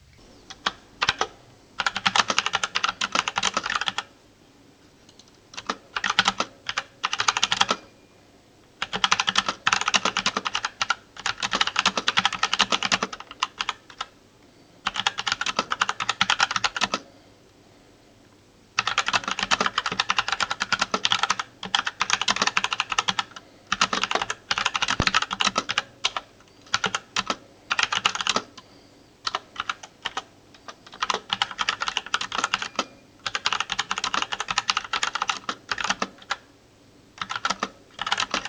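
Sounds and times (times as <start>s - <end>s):
keyboard typing clatter in an office: 0.6s - 4.1s, 5.1s - 7.9s, 8.8s - 14.1s, 14.8s - 17.0s, 18.8s - 36.5s, 37.2s - 38.4s.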